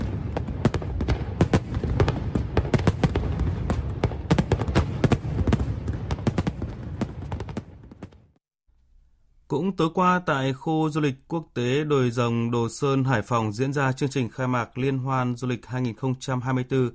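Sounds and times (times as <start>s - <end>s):
fireworks display bursting in sharp cracks and pops: 0.0s - 8.4s
speech: 9.5s - 16.9s.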